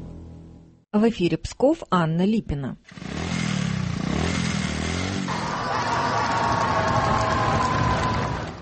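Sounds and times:
speech: 0.9 - 3.1
several motorcycle engines rumbling and revving as bikes pull in: 2.9 - 8.6
noisy crowd: 5.3 - 8.6.

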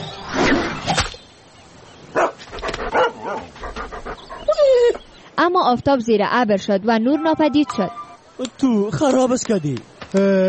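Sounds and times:
dog barking while chasing a spot of light: 2.2 - 3.5
dog panting while chasing a spot of light: 2.5 - 5.2
dog whimpering while chasing a spot of light: 4.1 - 5.2
speech: 5.4 - 10.4.

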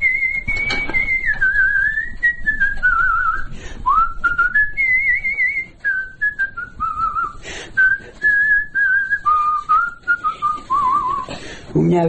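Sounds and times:
person whistling a song melody: 0.0 - 11.3.

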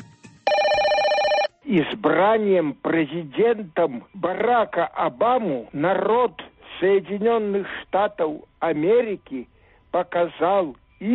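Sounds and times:
telephone bell ringing: 0.4 - 1.5
speech: 1.7 - 11.1.

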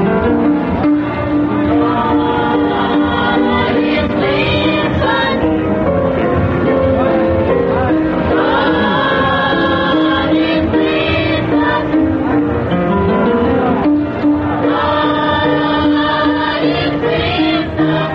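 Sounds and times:
children's choir of pupils from a religious school singing in harmony: 0.0 - 6.0, 6.9 - 12.5, 13.3 - 18.1.

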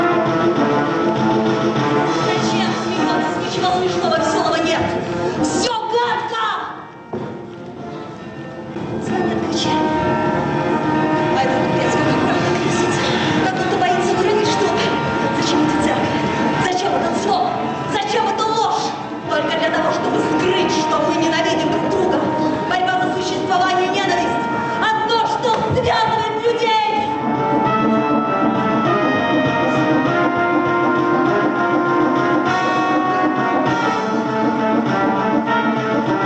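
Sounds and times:
loud restless orchestral music with dense strings and chugging pulse: 0.0 - 36.2.

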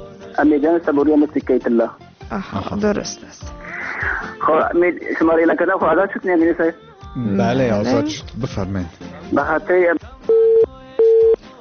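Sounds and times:
speech: 0.4 - 3.6, 4.2 - 10.1
telephone busy signal after dropped call: 10.3 - 11.4.

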